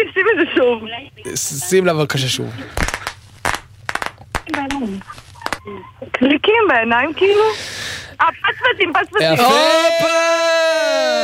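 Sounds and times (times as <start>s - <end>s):
speech: 0.0s - 3.0s, 4.5s - 10.6s
bang snaps thrown onto a hard surface popping: 2.8s - 5.6s.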